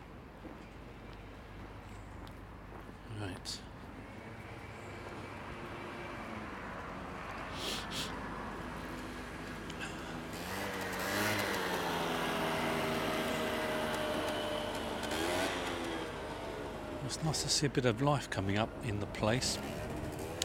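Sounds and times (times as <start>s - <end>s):
steady road noise: 0.0s - 20.4s
speech: 3.2s - 3.7s, 17.2s - 19.7s
motorbike engine revving as it passes on the road: 9.8s - 17.0s, 19.4s - 20.4s.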